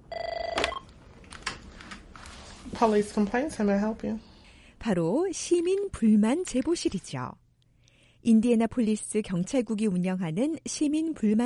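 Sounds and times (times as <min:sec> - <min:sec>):
ringing tone of an outgoing phone call to a police complaints line: 0:00.1 - 0:00.9
speech: 0:02.8 - 0:07.4, 0:08.2 - 0:11.4.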